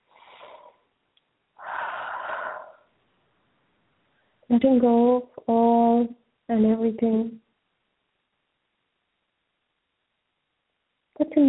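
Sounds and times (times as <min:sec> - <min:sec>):
deep breathing: 0:00.0 - 0:00.9, 0:01.6 - 0:02.9
speech: 0:04.5 - 0:07.4.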